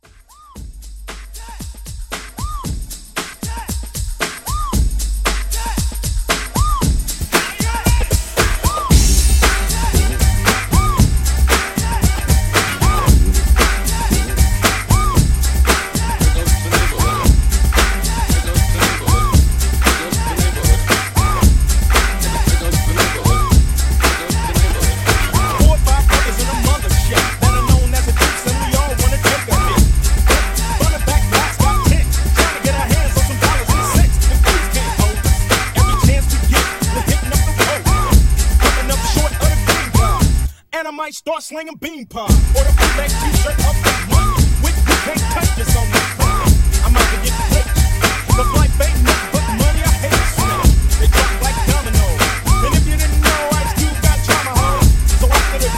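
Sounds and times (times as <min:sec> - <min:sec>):
90s old school uptempo drum loop: 0:00.0 - 0:40.6, 0:42.3 - 0:55.7.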